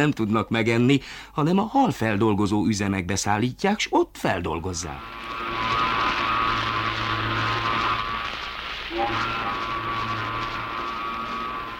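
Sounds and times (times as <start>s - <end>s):
speech: 0.0s - 5.9s
rumble: 4.8s - 11.7s
ship's horn calling passengers to board: 4.8s - 11.7s.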